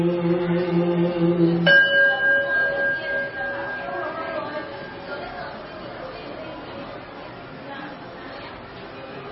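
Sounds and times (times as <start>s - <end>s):
low sustained chanted note: 0.0s - 5.4s
meditation bell ringing: 1.6s - 5.6s.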